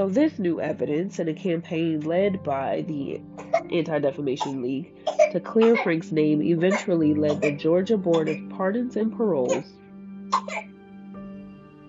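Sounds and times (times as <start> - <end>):
speech: 0.0 - 9.8
baby coughing: 3.4 - 3.7, 4.4 - 6.0, 6.7 - 8.4, 9.5 - 9.7, 10.3 - 10.7.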